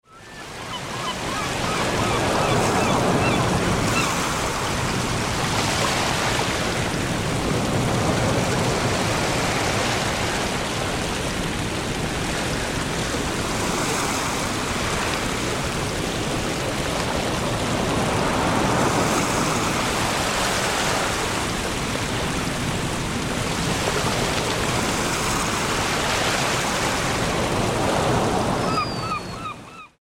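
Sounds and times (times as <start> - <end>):
ocean surf in a storm: 0.1 - 29.8.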